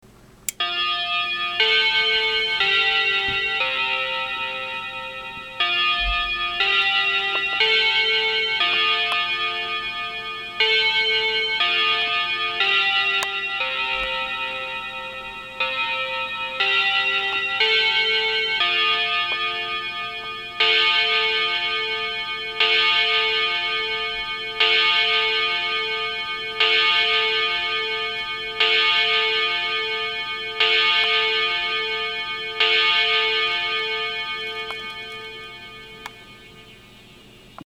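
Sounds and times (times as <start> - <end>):
clock chime: 0.5 - 37.4.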